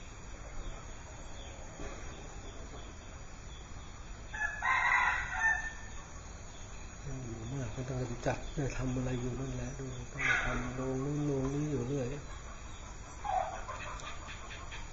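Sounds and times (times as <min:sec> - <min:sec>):
steady low hiss: 0:00.0 - 0:14.9
rooster crowing: 0:04.3 - 0:06.2, 0:10.0 - 0:14.9
speech: 0:07.9 - 0:12.5.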